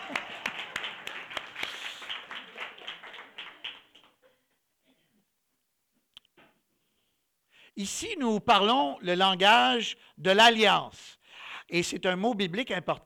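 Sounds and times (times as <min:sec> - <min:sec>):
crowd applauding: 0:00.0 - 0:04.2
speech: 0:07.8 - 0:13.0.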